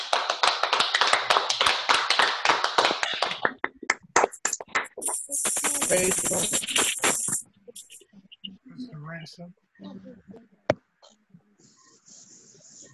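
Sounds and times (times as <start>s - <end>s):
audience applauding: 0.0s - 7.3s
steady hiss: 5.0s - 8.0s
faint murmuring: 5.0s - 12.9s
speech: 5.9s - 6.9s, 9.2s - 10.6s.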